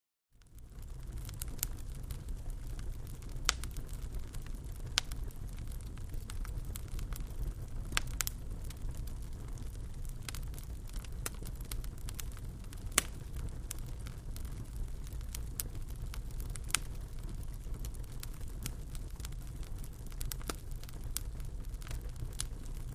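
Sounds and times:
fireplace fire: 0:00.4 - 0:22.9.

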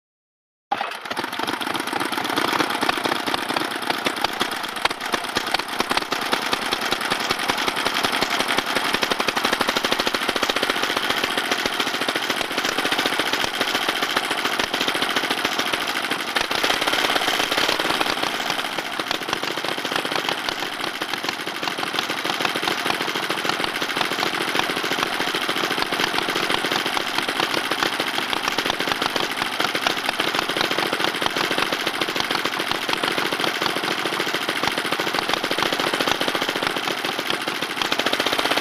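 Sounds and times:
old motorbike idling and switching off: 0:00.7 - 0:38.6.

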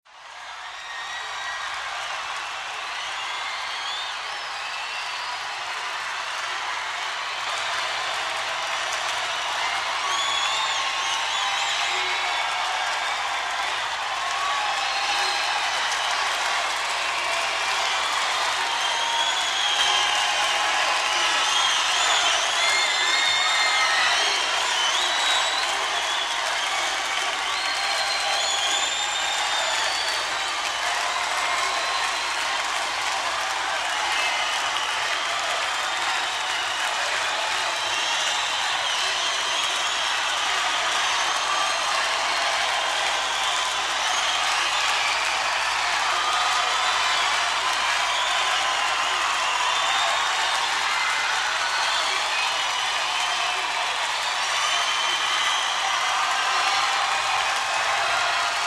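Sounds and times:
rock concert crowd before the concert: 0:00.1 - 0:58.6.

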